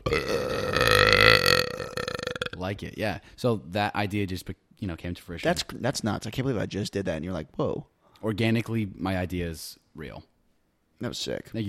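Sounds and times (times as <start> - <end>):
long loud deep gravelly burp: 0.0 - 2.6
speech: 2.6 - 10.3, 11.0 - 11.6.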